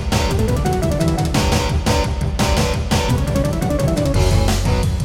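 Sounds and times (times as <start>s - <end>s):
Yamaha CBX-T3 synthesizer intro: 0.1s - 2.1s, 3.0s - 4.9s.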